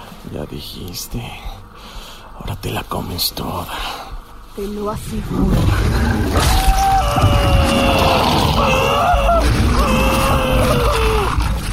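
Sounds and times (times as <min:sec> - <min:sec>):
speech: 0:00.3 - 0:01.6, 0:02.4 - 0:04.0, 0:04.6 - 0:09.5
man screaming: 0:06.4 - 0:11.6.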